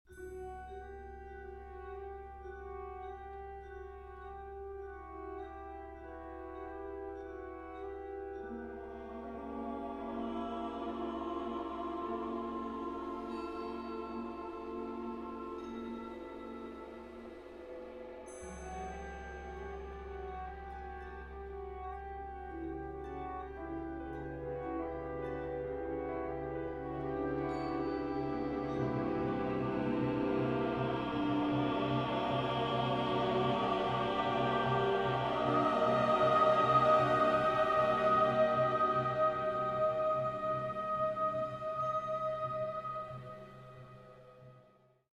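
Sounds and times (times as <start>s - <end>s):
chamber choir singing: 5.4s - 20.8s, 23.6s - 44.2s.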